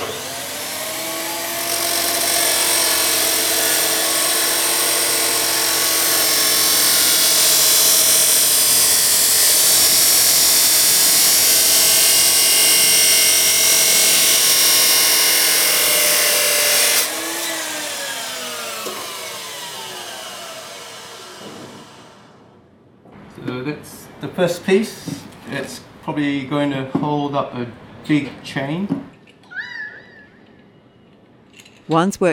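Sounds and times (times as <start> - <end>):
power grinder scrubbing rust off a metal pipe for welding: 0.0 - 22.3
speech: 24.4 - 29.1, 31.9 - 32.3.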